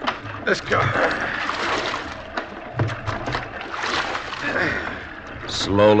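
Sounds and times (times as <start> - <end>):
oars rowing a small boat through water at sea: 0.0 - 5.9
steady wash of sea noise: 0.0 - 5.9
speech: 0.5 - 1.3, 5.6 - 5.9.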